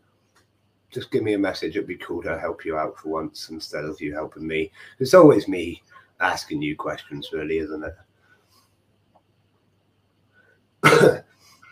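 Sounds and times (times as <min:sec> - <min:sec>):
speech: 0:00.9 - 0:08.0
harsh throaty cough: 0:10.8 - 0:11.4.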